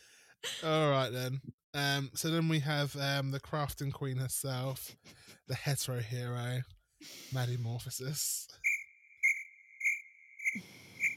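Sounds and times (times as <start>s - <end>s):
speech: 0.5s - 8.7s
crickets chirping: 8.6s - 11.1s.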